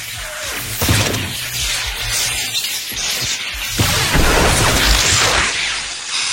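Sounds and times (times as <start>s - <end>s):
long lightning sound: 0.6s - 2.4s, 3.6s - 6.1s.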